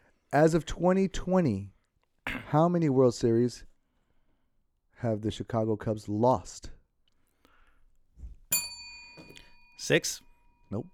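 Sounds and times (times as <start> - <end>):
speech: 0.3 - 1.8, 2.5 - 3.7, 5.0 - 6.8, 9.8 - 10.9
bell strike during a trivia quiz game: 8.5 - 10.9.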